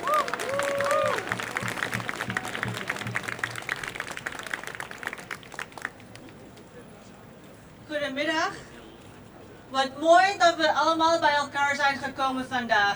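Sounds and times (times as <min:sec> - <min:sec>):
crowd applause for a speaker at a commemoration rally on a public square: 0:00.0 - 0:06.4
speech: 0:09.7 - 0:12.9.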